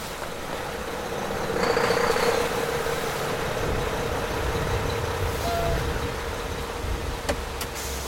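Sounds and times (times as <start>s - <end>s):
semi truck engine rumbling: 0.0s - 8.0s
semi truck air brake hiss as it comes to a stop: 7.8s - 8.0s.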